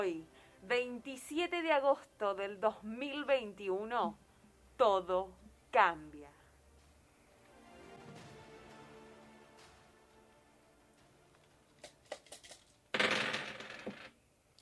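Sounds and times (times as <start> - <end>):
speech: 0.0 - 4.2, 4.8 - 6.4
dice rattling and clattering across a hard surface during a dice game: 11.8 - 14.2.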